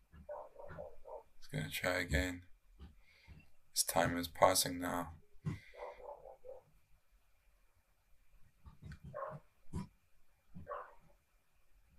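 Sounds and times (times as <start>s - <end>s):
dogs barking in the background: 0.2s - 1.4s, 5.6s - 6.7s, 9.0s - 9.5s, 10.6s - 11.1s
speech: 1.5s - 2.5s, 3.8s - 5.6s.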